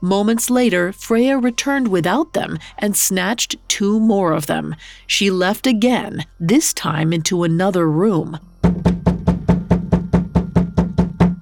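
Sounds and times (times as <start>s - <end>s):
speech: 0.0s - 9.0s
rapid heavy knocking on a door: 8.6s - 11.4s.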